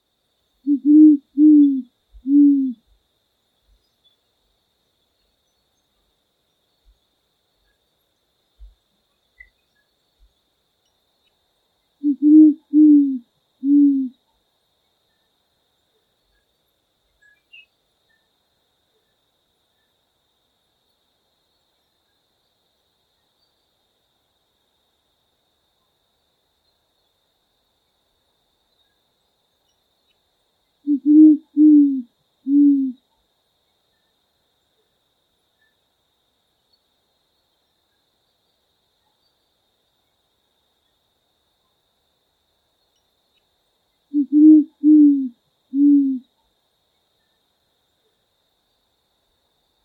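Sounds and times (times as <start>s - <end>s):
jacurutu calling: 0.7s - 2.8s, 12.0s - 14.2s, 30.9s - 33.0s, 44.1s - 46.2s.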